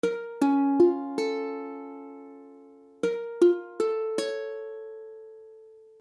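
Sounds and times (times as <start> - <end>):
Bbmmaj7 ukulele chord: 0.0 - 6.0.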